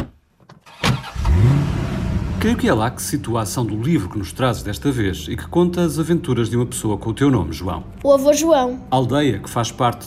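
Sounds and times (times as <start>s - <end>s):
car engine cranking and starting: 0.6s - 6.8s
speech: 2.4s - 10.0s.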